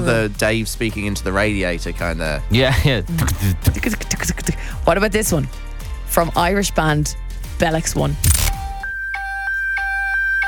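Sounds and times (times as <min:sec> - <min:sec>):
speech: 0:00.0 - 0:08.3
Nokia mobile phone ringtone of two-pitch electronic beeps: 0:08.8 - 0:10.4.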